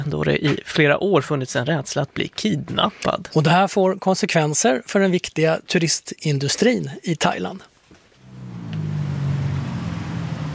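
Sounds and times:
speech: 0:00.0 - 0:07.7
car or small motorbike rolling past: 0:08.2 - 0:10.5
street traffic: 0:08.2 - 0:10.5.

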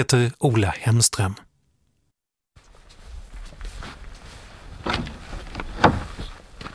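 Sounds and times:
speech: 0:00.0 - 0:01.5
heavy footsteps up steep wooden stairs to a barn loft: 0:02.8 - 0:06.7
door of an old barn creaking open in Småland Sweden: 0:04.8 - 0:06.4.

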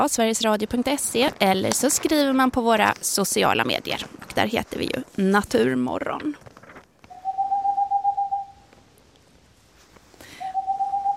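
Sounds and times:
speech: 0:00.0 - 0:06.4
Tengmalm's owl boreal owl calling in a trill of soft hoots: 0:07.1 - 0:08.7, 0:10.3 - 0:11.1.

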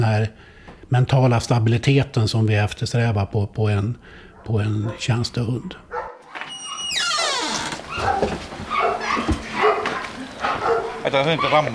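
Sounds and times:
speech: 0:00.0 - 0:05.9, 0:11.0 - 0:11.7
dogs whimpering and barking at a kennel: 0:04.4 - 0:05.2, 0:05.9 - 0:07.2, 0:07.8 - 0:11.7.

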